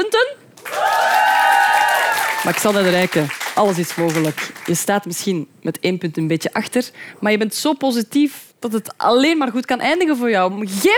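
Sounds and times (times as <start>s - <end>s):
speech: 0.0s - 1.2s, 2.4s - 10.9s
faint sustained cheer or whoop: 0.6s - 2.9s
audience applause: 0.6s - 4.8s.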